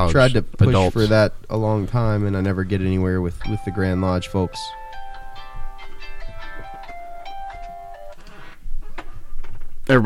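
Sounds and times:
speech: 0:00.0 - 0:04.8, 0:09.9 - 0:10.0
faint noise: 0:00.0 - 0:10.0
phone alarm playing a bright electronic melody: 0:03.4 - 0:08.2.

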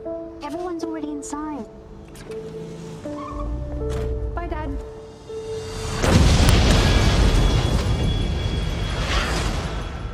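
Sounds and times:
speech: 0:00.5 - 0:06.2
deep booming explosion: 0:05.8 - 0:10.1.

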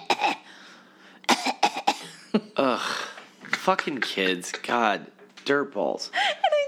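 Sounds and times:
voice imitating a little girl coughing over food: 0:00.0 - 0:00.4, 0:01.3 - 0:02.2
speech: 0:02.3 - 0:06.4.

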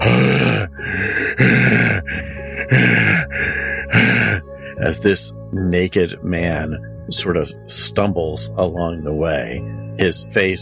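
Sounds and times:
voice imitating a man groaning and trying to scream: 0:00.0 - 0:04.4
speech: 0:04.9 - 0:10.6.

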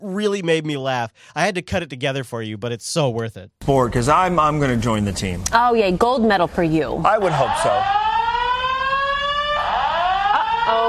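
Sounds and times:
speech: 0:00.2 - 0:08.0
fire alarm blaring: 0:07.2 - 0:10.8.

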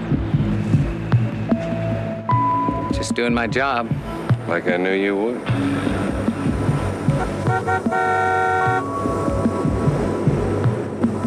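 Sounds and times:
continuous low engine rumble: 0:00.0 - 0:11.2
outdoor noise: 0:00.0 - 0:11.2
speech: 0:03.1 - 0:06.7
car horn honk: 0:07.2 - 0:08.9.

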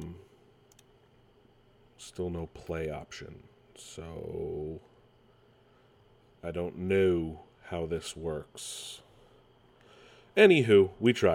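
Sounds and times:
computer keyboard clicks: 0:00.7 - 0:00.9
speech: 0:02.0 - 0:04.9, 0:06.4 - 0:09.0, 0:10.4 - 0:11.3.

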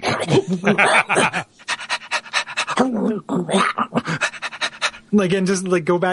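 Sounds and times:
quick rhythmic panting of short breathy puffs: 0:00.0 - 0:05.7
speech: 0:00.2 - 0:01.3, 0:05.2 - 0:06.1
laughter: 0:00.3 - 0:01.5
human voice imitating a dog's gross guttural noises: 0:02.6 - 0:04.9.

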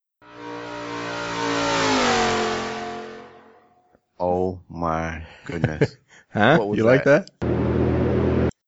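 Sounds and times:
car accelerating hard with engine revving: 0:00.2 - 0:03.8, 0:07.4 - 0:08.6
speech: 0:04.2 - 0:07.6
laughter: 0:05.2 - 0:07.2.

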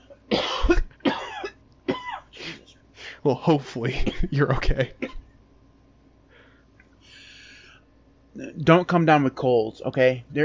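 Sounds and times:
person clearing throat: 0:00.0 - 0:02.7, 0:04.0 - 0:05.2
person coughing harshly: 0:00.0 - 0:02.8, 0:03.9 - 0:05.3
speech: 0:03.2 - 0:05.2, 0:08.6 - 0:10.4.

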